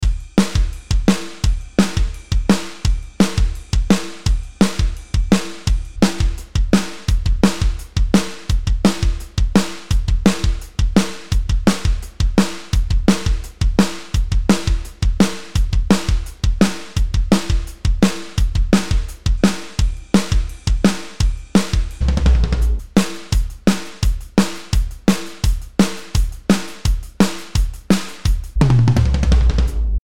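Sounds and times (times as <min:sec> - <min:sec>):
blues rock drum solo: 0:00.0 - 0:30.0.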